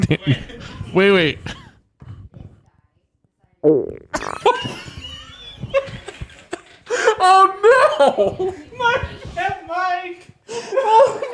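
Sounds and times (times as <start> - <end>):
speech: 0.0 - 1.6, 3.6 - 5.0, 7.2 - 11.3
group laughing loudly: 0.0 - 2.3, 4.2 - 9.6, 10.5 - 11.3
loud fart close to a microphone: 3.6 - 4.6
excited chatter of a group: 5.3 - 11.3.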